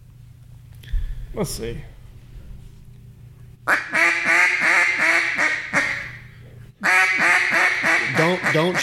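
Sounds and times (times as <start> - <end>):
speech: 1.3 - 2.0, 8.5 - 8.8
duck call blown to imitate a boss hen mallard quacking: 3.7 - 6.2, 6.8 - 8.8.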